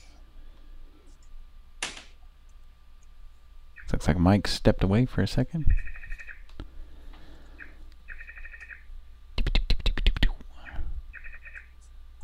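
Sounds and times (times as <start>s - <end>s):
sharp loud clicks: 1.8s - 2.2s, 9.4s - 10.4s
speech: 3.9s - 6.0s
frog chirping: 5.7s - 6.5s, 7.6s - 8.9s, 11.1s - 11.7s.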